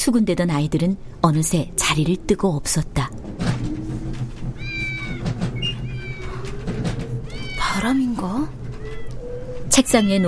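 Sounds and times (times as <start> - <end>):
steady low hum: 0.0 - 10.0
speech: 0.1 - 3.4, 7.8 - 8.6, 9.8 - 10.2
cat meowing sharply: 4.6 - 6.6, 7.2 - 8.0, 8.7 - 9.2, 9.8 - 10.2.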